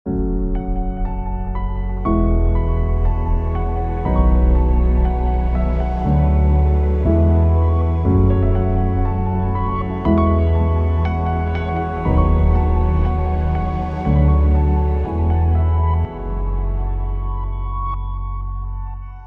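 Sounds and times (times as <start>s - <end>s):
thoughtful reflective piano melody: 0.1s - 19.2s
thoughtful reflective synth pads: 0.1s - 19.2s.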